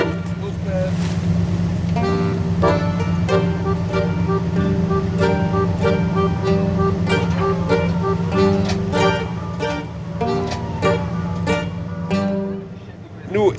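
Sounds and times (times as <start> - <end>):
powerful coast guard patrol boat engine heading out to sea off Lampedusa: 0.0 - 13.5.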